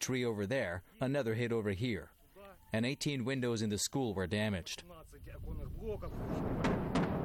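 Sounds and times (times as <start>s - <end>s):
speech: 0.0s - 7.2s
outgoing artillery fired by Donbas separatists: 6.2s - 7.2s.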